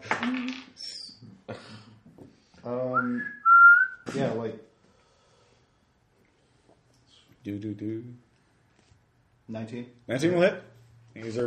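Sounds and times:
person whistling to get attention: 2.9s - 4.1s
speech: 7.5s - 8.3s, 9.5s - 11.4s.

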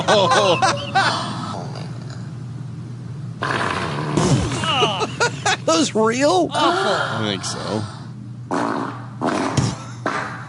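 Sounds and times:
laughter: 0.0s - 1.4s, 4.6s - 5.8s
speech: 0.0s - 1.4s, 5.8s - 8.7s
fart sounds in an online video: 3.4s - 4.7s, 8.5s - 10.4s.

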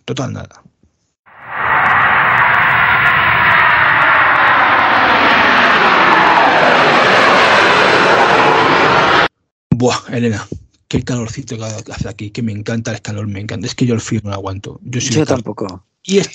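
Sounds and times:
speech: 0.1s - 0.7s, 9.8s - 16.3s
airplane engines roaring as the aircraft powers up for takeoff: 1.3s - 9.3s.

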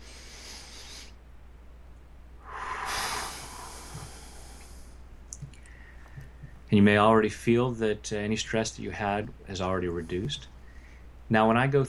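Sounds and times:
deep breath during a stress-relief tapping exercise: 0.0s - 1.2s, 2.4s - 6.6s, 10.6s - 11.1s
faint clicks: 3.9s - 6.6s
speech: 6.7s - 10.5s, 11.3s - 11.8s.

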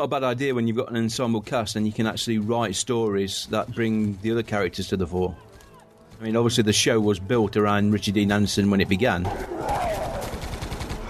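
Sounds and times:
speech: 0.0s - 5.5s, 6.2s - 9.8s
gunfire bursts in a battle scene: 9.3s - 11.0s.

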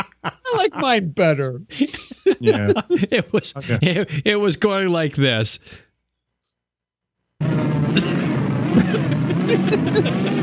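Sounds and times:
laughter: 0.0s - 1.0s, 1.7s - 4.3s, 8.0s - 10.4s
speech: 0.2s - 5.9s, 9.5s - 10.4s
sci-fi warp engine humming sound effect: 7.4s - 10.4s.

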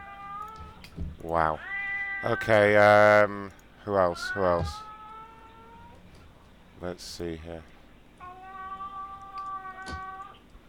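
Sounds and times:
speech: 1.0s - 4.9s, 6.8s - 7.7s
cat meowing: 1.6s - 2.5s, 4.1s - 6.0s, 8.2s - 10.4s.

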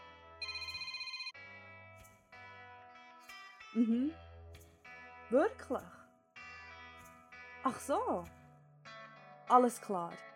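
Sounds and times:
bright electronic melodic phone ringtone: 0.4s - 1.4s
speech: 3.8s - 4.3s, 5.3s - 6.0s, 7.6s - 8.4s, 9.5s - 10.3s.

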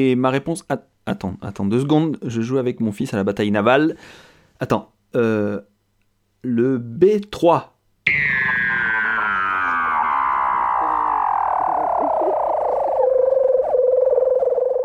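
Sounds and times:
speech: 0.0s - 5.7s, 6.4s - 8.6s
sleeping seal making a buzzy dreaming call: 8.1s - 14.8s.

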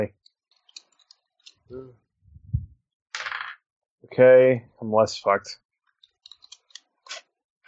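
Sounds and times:
speech: 0.0s - 0.2s, 1.7s - 2.0s, 4.1s - 5.6s
dice rattling and clattering across a table: 3.1s - 3.6s.

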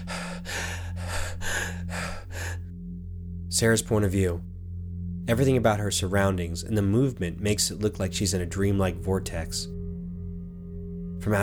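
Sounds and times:
woman gasping for breath in pain: 0.0s - 2.7s
low constant hum: 0.0s - 11.4s
speech: 3.6s - 4.5s, 5.3s - 9.8s, 11.2s - 11.4s.

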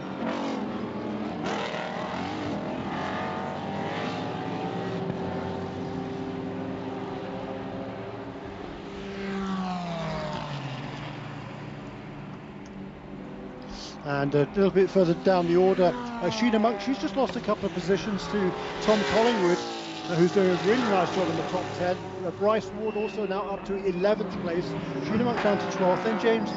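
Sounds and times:
Aston Martin and BMW race car engines racing at VIR: 0.0s - 26.5s
speech: 14.1s - 26.5s.

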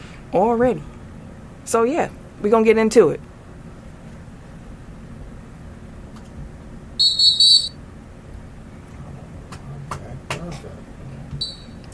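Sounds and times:
speech: 0.3s - 1.0s, 1.7s - 3.3s
cheap whistle blown weakly, thin and reedy: 7.0s - 7.8s.

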